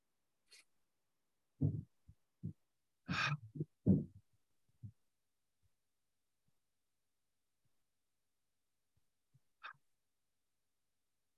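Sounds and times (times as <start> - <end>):
deep breathing in through the nose and out through the mouth: 3.1 - 4.1.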